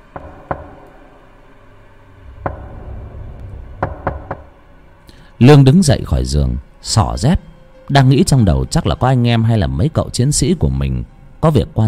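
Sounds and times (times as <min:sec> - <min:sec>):
knocking on a wooden door: 0:00.1 - 0:00.9, 0:02.4 - 0:03.1, 0:03.7 - 0:04.6
speech: 0:05.4 - 0:11.8.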